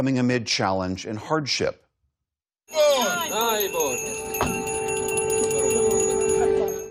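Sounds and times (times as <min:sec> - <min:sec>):
speech: 0:00.0 - 0:01.8, 0:02.7 - 0:04.7
voices singing or calling: 0:02.7 - 0:04.2
bells ringing: 0:02.7 - 0:06.8.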